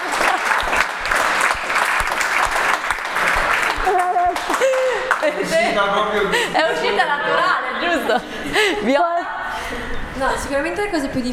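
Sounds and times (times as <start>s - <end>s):
crowd applauding: 0.0s - 5.8s
laughter: 0.0s - 10.8s
speech: 5.8s - 9.2s, 10.2s - 11.3s.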